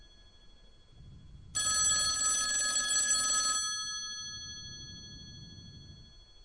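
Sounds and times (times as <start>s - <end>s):
ringback tone of an outgoing phone call: 1.6s - 6.2s.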